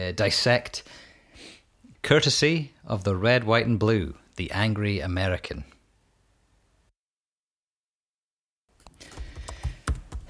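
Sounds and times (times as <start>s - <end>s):
speech: 0.0s - 1.0s, 2.0s - 5.7s
typing on a computer keyboard: 8.8s - 10.2s.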